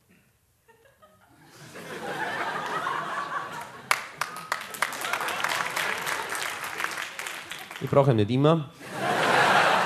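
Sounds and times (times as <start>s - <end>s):
audience laughter: 0.6s - 6.8s, 8.8s - 9.8s
audience applause: 2.1s - 8.2s
speech: 7.8s - 8.8s.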